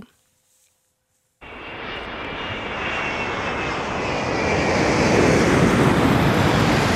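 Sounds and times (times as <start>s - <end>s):
Airbus A380 jet airliner engines roaring: 1.4s - 6.9s.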